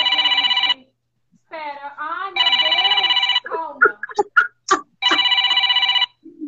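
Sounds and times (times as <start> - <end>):
phone ringing with an incoming call: 0.0 - 0.8, 2.4 - 4.3, 5.0 - 6.2.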